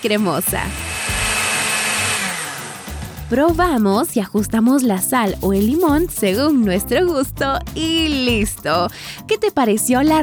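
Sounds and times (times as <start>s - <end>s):
speech: 0.0s - 0.9s, 3.3s - 10.2s
blender whirring while emulsifying mayonnaise: 0.0s - 3.3s.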